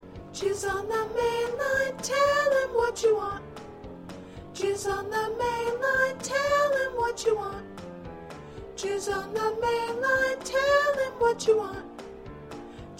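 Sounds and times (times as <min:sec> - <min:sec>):
soprano singing: 0:00.2 - 0:03.6, 0:04.4 - 0:07.8, 0:08.7 - 0:12.0
choir singing: 0:00.4 - 0:03.4, 0:04.6 - 0:07.6, 0:08.8 - 0:11.8.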